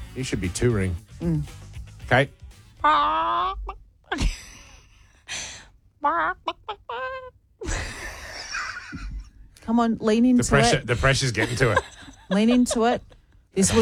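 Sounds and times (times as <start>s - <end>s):
speech: 0.2s - 4.4s, 6.0s - 8.0s, 9.7s - 13.7s
person's voice mimicking a seagull: 2.8s - 3.8s, 6.0s - 7.3s
laughter: 4.1s - 5.1s, 6.0s - 9.3s, 10.5s - 13.7s.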